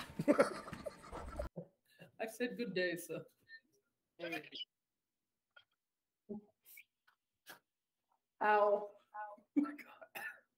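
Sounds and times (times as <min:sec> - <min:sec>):
speech: 0:00.2 - 0:00.6, 0:02.4 - 0:03.4, 0:04.2 - 0:04.7, 0:08.4 - 0:09.0
person coughing: 0:10.1 - 0:10.5.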